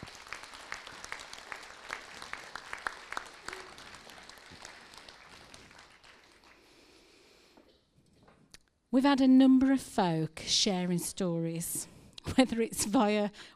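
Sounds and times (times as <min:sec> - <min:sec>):
audience applause: 0:00.0 - 0:06.9
speech: 0:09.0 - 0:13.5.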